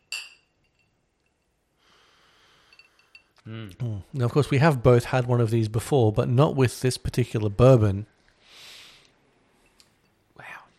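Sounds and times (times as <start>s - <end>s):
cocktail glasses clinking in a toast: 0.0s - 1.6s, 2.6s - 3.4s
soft breathy hiss: 1.7s - 3.6s, 8.2s - 10.7s
speech: 3.4s - 8.1s.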